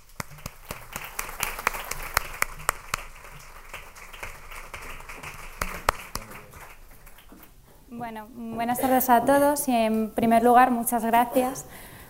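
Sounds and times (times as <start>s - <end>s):
light applause from a small audience: 0.0s - 7.6s
speech: 8.0s - 11.9s.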